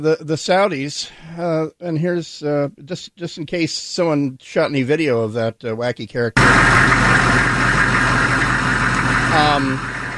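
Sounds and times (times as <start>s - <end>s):
brief voice-like tone rising: 0.0s - 3.4s, 9.3s - 9.8s
speech: 0.0s - 7.3s, 9.3s - 10.0s
Humvee engine idling: 6.4s - 10.1s.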